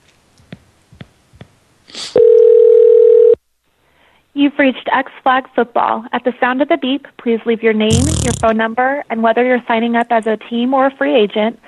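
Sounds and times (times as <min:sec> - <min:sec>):
telephone dial tone while calling a toll-free number: 0:02.2 - 0:03.4
speech: 0:04.4 - 0:11.6.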